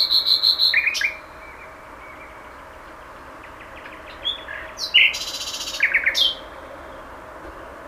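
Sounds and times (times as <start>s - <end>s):
common nightingale song: 0.0s - 7.8s.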